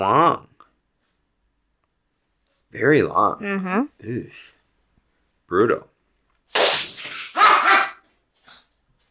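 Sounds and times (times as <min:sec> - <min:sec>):
speech: 0:00.0 - 0:00.5, 0:02.7 - 0:04.6, 0:05.5 - 0:05.9
dog barking: 0:07.2 - 0:08.1
dog yipping: 0:07.3 - 0:08.1.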